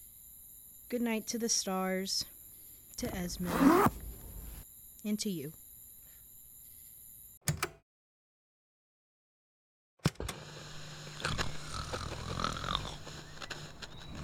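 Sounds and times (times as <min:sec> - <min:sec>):
speech: 0:00.9 - 0:02.3, 0:03.0 - 0:04.0, 0:05.0 - 0:05.6
loud rasping snoring of a sleeping person: 0:11.1 - 0:14.2.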